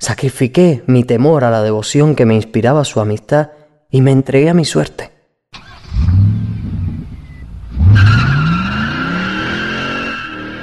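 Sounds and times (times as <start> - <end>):
speech: 0.0 - 5.2
car engine roaring and revving as the car accelerates onto a highway: 5.6 - 10.6
tires squealing: 5.6 - 10.6.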